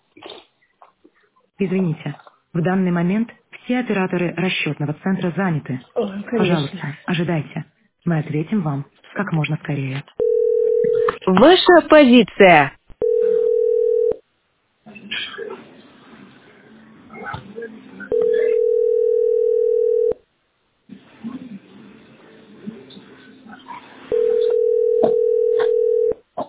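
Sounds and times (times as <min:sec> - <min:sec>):
speech: 0:01.6 - 0:10.2, 0:11.2 - 0:12.8
telephone line tone while a call is being placed: 0:10.2 - 0:11.2, 0:13.0 - 0:14.2, 0:18.1 - 0:20.2, 0:24.1 - 0:26.2.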